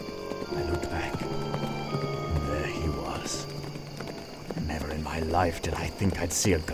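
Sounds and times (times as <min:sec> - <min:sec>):
horse galloping along a hard road: 0:00.0 - 0:06.7
speech: 0:05.2 - 0:06.7.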